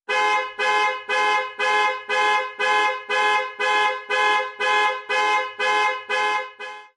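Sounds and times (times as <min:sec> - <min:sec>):
car alarm ringtone: 0:00.1 - 0:06.9.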